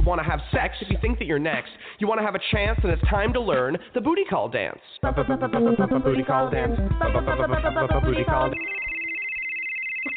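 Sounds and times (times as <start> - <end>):
speech: 0.1 - 8.8
phone ringtone for an incoming call: 8.5 - 10.1.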